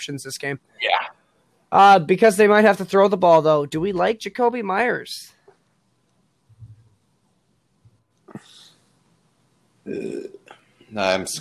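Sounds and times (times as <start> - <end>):
speech: 0.0 - 1.0, 1.7 - 5.4, 9.9 - 11.3
low throat rumbles: 9.9 - 10.5
person burping: 9.9 - 10.5.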